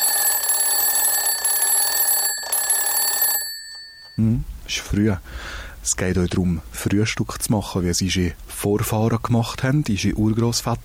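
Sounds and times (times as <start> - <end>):
alarm clock ringing in the morning: 0.0 - 4.2
speech: 4.2 - 10.8.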